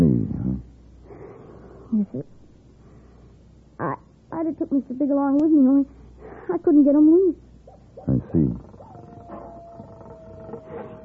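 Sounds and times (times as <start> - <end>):
speech: 1.9 - 2.4, 4.4 - 8.7
coyotes howling in a chorus: 7.6 - 11.0.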